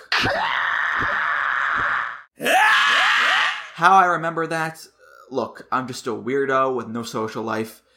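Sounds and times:
loud raw scream in a theme song: 0:00.0 - 0:03.8
speech: 0:00.2 - 0:01.2, 0:03.8 - 0:07.8.

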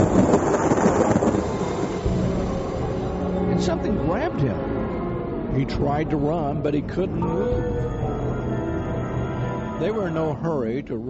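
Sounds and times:
dense low roar and hissing like rain or wind: 0:00.0 - 0:04.6
thunder rumbling in a storm: 0:00.0 - 0:10.0
speech: 0:05.6 - 0:08.0, 0:09.8 - 0:11.0.

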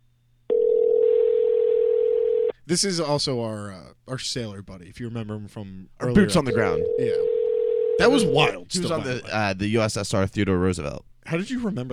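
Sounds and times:
steady telephone dial tone: 0:00.5 - 0:02.5, 0:06.9 - 0:08.0
speech: 0:02.7 - 0:07.3, 0:08.0 - 0:11.9.

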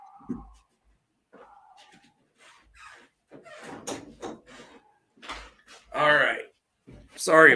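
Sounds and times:
door being moved and shut: 0:03.4 - 0:04.7
speech: 0:07.2 - 0:07.5.

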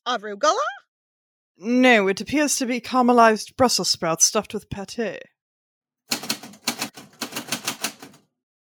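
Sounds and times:
speech: 0:00.0 - 0:00.7, 0:01.6 - 0:05.3
typewriter keystrokes: 0:06.1 - 0:08.3.

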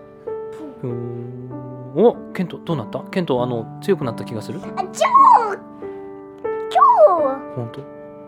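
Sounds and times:
speech: 0:00.8 - 0:05.6, 0:07.6 - 0:08.0
dog barking in drawn-out whining yips: 0:06.7 - 0:07.4.

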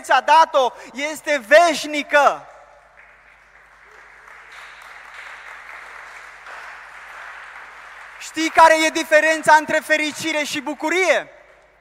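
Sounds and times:
speech: 0:00.0 - 0:02.5, 0:08.3 - 0:11.4
large church audience clapping: 0:02.7 - 0:11.7.

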